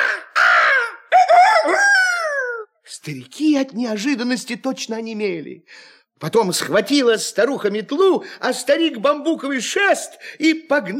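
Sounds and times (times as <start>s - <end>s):
person imitating a crow's cawing: 0.0s - 2.8s
speech: 3.0s - 10.9s.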